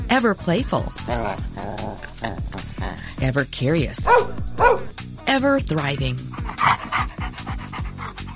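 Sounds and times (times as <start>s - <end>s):
speech: 0.1s - 7.4s
dog barking in short sharp woofs: 4.0s - 5.0s.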